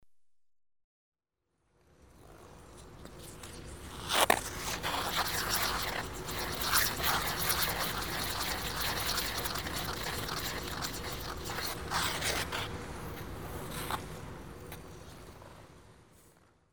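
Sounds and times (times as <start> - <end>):
ice skates spinning on an indoor rink: 2.2 - 15.5.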